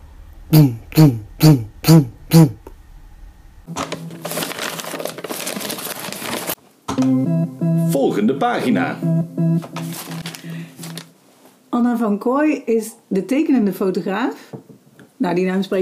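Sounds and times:
speech: 0.5s - 2.6s, 12.2s - 14.6s, 15.2s - 15.8s
loud music from an illegal party: 7.0s - 11.0s.

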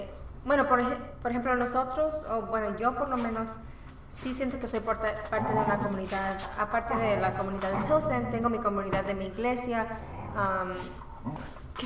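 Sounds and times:
low hum: 0.0s - 11.8s
speech: 0.4s - 11.8s
dog giving a short high yelping bark: 5.3s - 8.7s.

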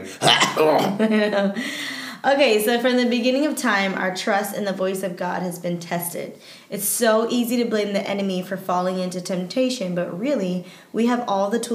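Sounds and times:
person clearing throat: 0.0s - 1.1s
speech: 0.2s - 11.7s.

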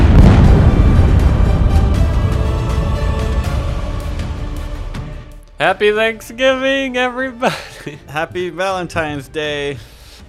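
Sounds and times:
bomb explosion sound effect: 0.0s - 5.4s
speech: 5.6s - 10.0s.

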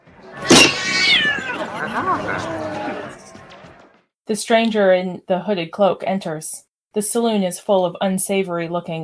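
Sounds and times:
three-breasted cat-like creature meowing and yowling: 0.4s - 1.8s
laughter: 0.5s - 3.3s
speech: 4.3s - 9.0s.

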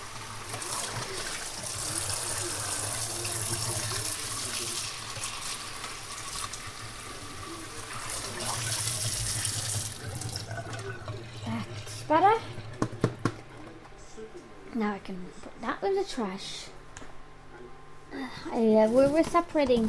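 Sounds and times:
tap water running into a sink in the Netherlands: 0.0s - 13.4s
speech: 14.8s - 16.7s, 18.4s - 19.8s.

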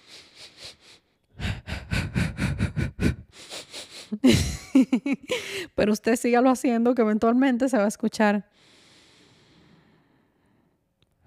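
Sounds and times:
rapid sniff-like breathing as a calming exercise: 0.0s - 4.5s, 8.6s - 10.7s
speech: 4.2s - 5.2s, 5.8s - 8.6s.

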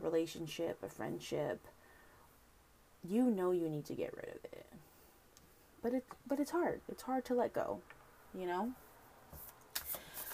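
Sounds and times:
speech: 0.0s - 1.8s, 3.0s - 4.9s, 5.8s - 9.5s
deck of cards being shuffled: 9.3s - 10.3s.

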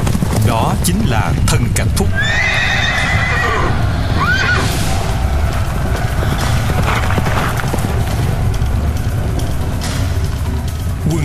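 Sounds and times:
horse hooves galloping: 0.0s - 11.2s
speech: 0.7s - 2.9s
horse whinnying: 2.1s - 4.8s.

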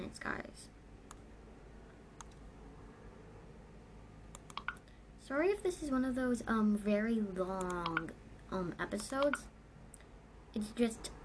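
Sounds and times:
speech: 0.0s - 0.8s, 5.3s - 9.5s, 10.5s - 11.2s
sharp clicks: 2.2s - 2.4s, 4.3s - 4.9s, 7.6s - 8.1s, 9.0s - 10.0s.

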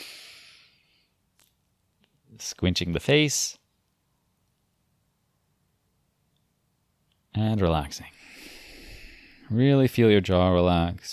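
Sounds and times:
deep breath drawn in through the nose: 0.0s - 1.2s, 8.1s - 9.5s
speech: 2.4s - 3.6s, 7.4s - 8.2s, 9.5s - 11.1s.

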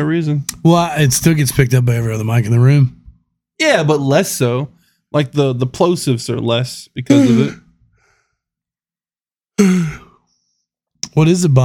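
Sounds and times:
speech: 0.0s - 3.0s, 3.6s - 7.6s, 9.6s - 9.8s, 11.2s - 11.6s
breathy voiced yawn: 7.1s - 7.6s, 9.6s - 10.2s.

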